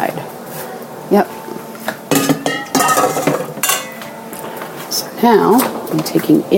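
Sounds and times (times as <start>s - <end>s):
speech: 1.1s - 1.4s, 5.2s - 6.5s
heavy full roasting pan being lifted and handled: 2.1s - 4.3s.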